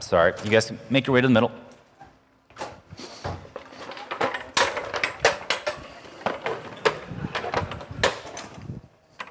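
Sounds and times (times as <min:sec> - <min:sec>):
speech: 0:00.0 - 0:01.7
chairs being carried and set down: 0:02.0 - 0:09.2.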